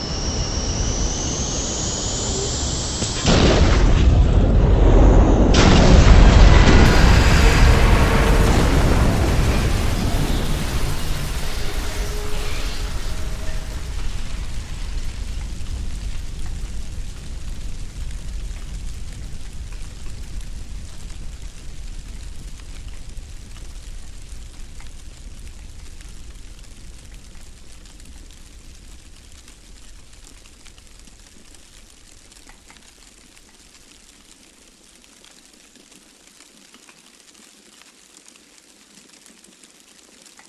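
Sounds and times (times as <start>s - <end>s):
burning airplane crashing on takeoff: 0.2s - 18.4s.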